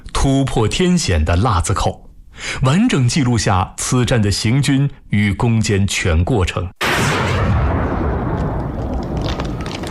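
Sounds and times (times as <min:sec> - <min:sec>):
speech: 0:00.2 - 0:07.1
heavy continuous gunfire: 0:06.8 - 0:09.9.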